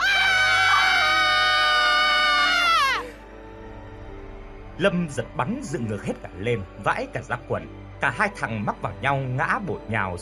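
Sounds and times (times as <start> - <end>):
two men screaming in terror beside a banyan tree: 0.0 - 3.2
speech: 4.8 - 10.1.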